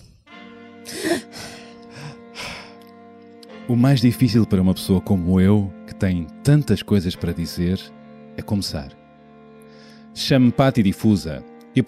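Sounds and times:
person taking deep breaths before reading aloud: 0:00.9 - 0:02.8, 0:09.6 - 0:10.2
speech: 0:03.7 - 0:09.0, 0:10.2 - 0:11.8.

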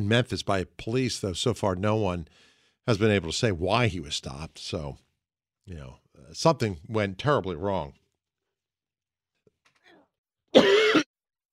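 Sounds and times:
speech: 0:00.0 - 0:08.0, 0:10.5 - 0:11.1
single harsh rasping throat-clearing cough: 0:10.5 - 0:11.1.

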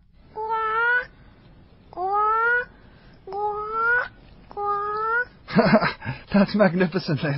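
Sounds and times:
child imitating a bird call: 0:00.4 - 0:01.1, 0:02.0 - 0:02.7, 0:03.3 - 0:05.4
speech: 0:05.6 - 0:07.3.

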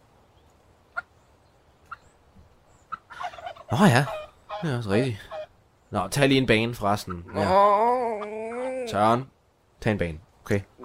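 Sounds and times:
turkeys gobbling: 0:00.9 - 0:01.2, 0:01.8 - 0:02.1, 0:02.8 - 0:05.6, 0:06.9 - 0:09.0
speech: 0:03.7 - 0:05.3, 0:05.9 - 0:08.0, 0:08.9 - 0:10.7.

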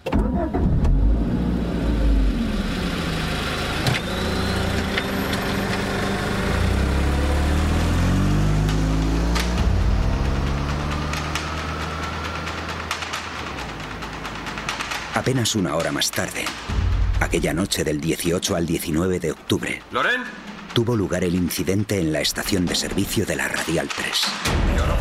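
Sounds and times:
car engine rumbling at night: 0:00.1 - 0:18.0
speech: 0:15.2 - 0:24.9.

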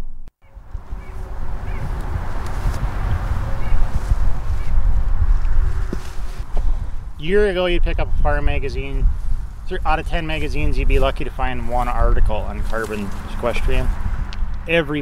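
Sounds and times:
bird calls outdoors on a farm in central Minnesota: 0:00.4 - 0:02.0, 0:03.3 - 0:04.9
low rumble of road traffic from US Highway 10: 0:00.4 - 0:15.0
speech: 0:07.2 - 0:14.0, 0:14.6 - 0:15.0.

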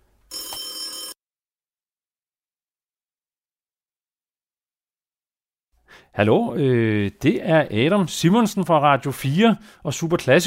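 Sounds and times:
telephone ringback buzzing: 0:00.3 - 0:01.2
speech: 0:05.9 - 0:10.4.

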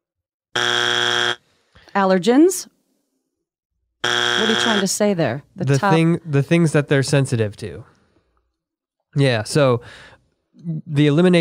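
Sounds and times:
harsh electronic buzzer: 0:00.6 - 0:01.4, 0:04.0 - 0:05.0
speech: 0:02.0 - 0:02.7, 0:04.0 - 0:07.9, 0:09.2 - 0:11.3.

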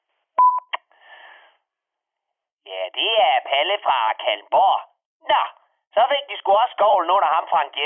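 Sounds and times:
electronic voicemail beep tone: 0:00.4 - 0:00.7
speech: 0:03.5 - 0:07.8.

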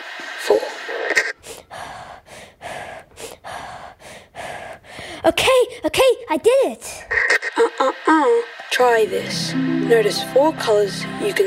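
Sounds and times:
breathing in and out during a deep-breathing exercise: 0:01.4 - 0:05.9
speech: 0:05.2 - 0:11.4.

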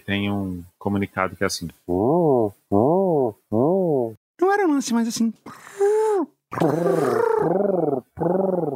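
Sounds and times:
speech: 0:00.1 - 0:02.9, 0:04.8 - 0:05.8, 0:06.5 - 0:08.4
voice imitating ant people communication noise: 0:01.9 - 0:04.2, 0:05.8 - 0:08.7.

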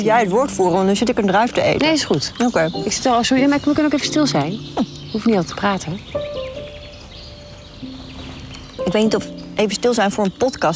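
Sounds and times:
speech: 0:00.0 - 0:06.3, 0:08.9 - 0:10.7
faint birdsong: 0:00.0 - 0:10.7.

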